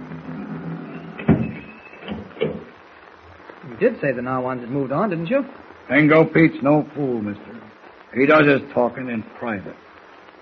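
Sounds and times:
door swinging shut with a solid thud: 0.0 - 2.7
speech: 3.8 - 9.9.

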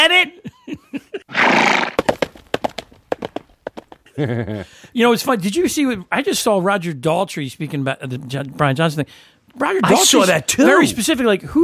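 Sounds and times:
laughter: 0.4 - 1.4, 4.1 - 4.8
horse whinnying: 1.3 - 2.2
horse hooves clip-clopping on a hard surface: 1.8 - 4.1
speech: 4.2 - 11.6.

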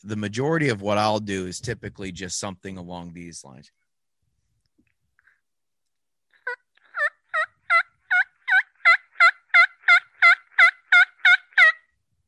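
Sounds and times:
speech: 0.0 - 3.8
hunter's turkey call imitating turkey yelps: 6.4 - 11.9.

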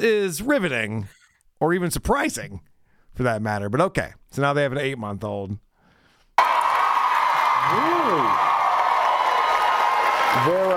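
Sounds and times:
speech: 0.0 - 5.6, 7.6 - 8.5, 10.3 - 10.7
person whooping: 6.4 - 10.5
large studio audience applause and cheering: 6.4 - 10.7.

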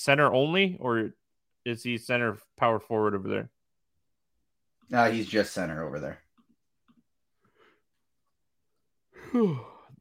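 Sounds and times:
speech: 0.0 - 3.6, 4.9 - 6.2, 9.3 - 9.7
person yawning with a voiced descending groan: 9.2 - 10.0.

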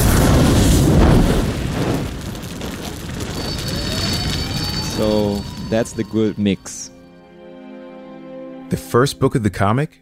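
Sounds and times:
loud deep explosion: 0.0 - 6.7
faint debris-like hiss: 0.0 - 6.9
speech: 5.0 - 7.0, 8.7 - 10.0.

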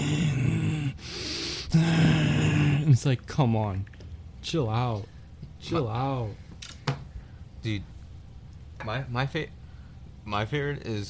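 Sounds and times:
person imitating heavy labored breathing: 0.0 - 3.0
speech: 1.7 - 2.1, 2.9 - 6.4, 7.6 - 7.9, 8.8 - 9.6, 10.3 - 11.0.

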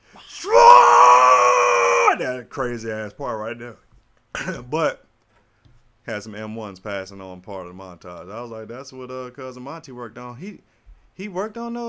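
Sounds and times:
person mimicking a metal-style scream: 0.1 - 2.2
speech: 2.6 - 5.1, 6.1 - 11.8.

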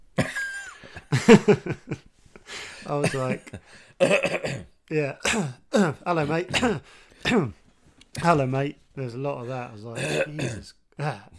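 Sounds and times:
person coughing: 0.2 - 0.9, 2.8 - 7.6, 10.0 - 11.3
speech: 1.0 - 7.6, 8.2 - 11.3.

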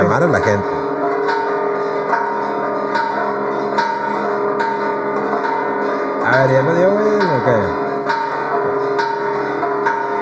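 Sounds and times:
church bells ringing: 0.0 - 10.2
speech: 0.1 - 0.8.

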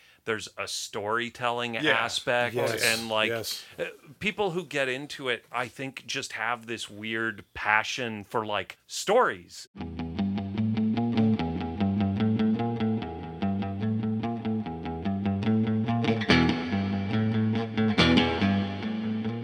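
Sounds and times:
speech: 0.2 - 10.0
vintage electric guitar picked chords through an amplifier: 9.8 - 19.4.

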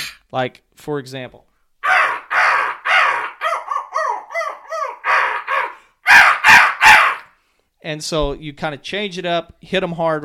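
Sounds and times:
speech: 0.3 - 1.5, 7.8 - 10.2
crow calls blown on a hunting call: 1.8 - 7.3.

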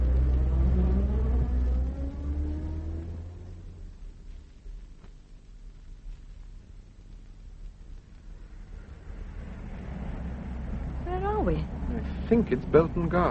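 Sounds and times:
car engine driving through city streets while following a taxi: 0.0 - 4.4, 8.5 - 13.2
speech: 12.3 - 13.2.

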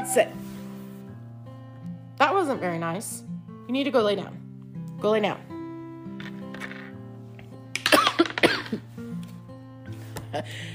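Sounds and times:
speech: 0.2 - 0.5, 2.2 - 4.4, 5.0 - 5.6, 10.4 - 10.7
person coughing at night: 7.8 - 8.8.

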